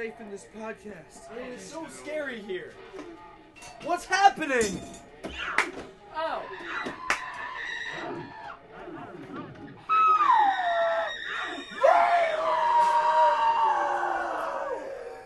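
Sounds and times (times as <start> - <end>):
speech: 0.0 - 7.1, 7.9 - 9.3
tortured anguished screaming: 6.4 - 8.6, 9.8 - 15.2.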